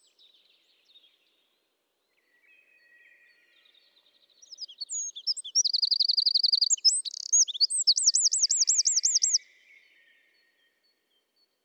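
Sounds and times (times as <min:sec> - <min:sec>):
Eurasian wren Troglodytes troglodytes singing: 0:04.5 - 0:09.4.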